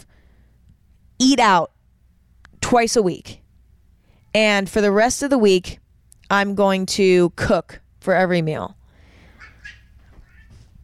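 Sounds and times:
speech: 1.2s - 1.8s, 2.7s - 3.4s, 4.4s - 8.8s
cats meowing while play-wrestling: 9.4s - 10.7s.

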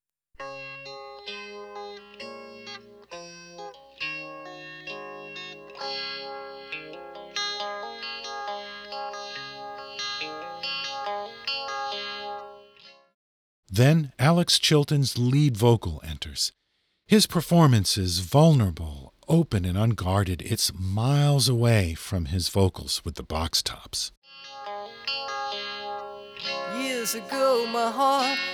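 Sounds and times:
gently picked electric guitar with swirling phaser effect: 0.4s - 12.9s, 24.3s - 28.5s
speech: 13.8s - 24.2s, 27.1s - 28.5s.

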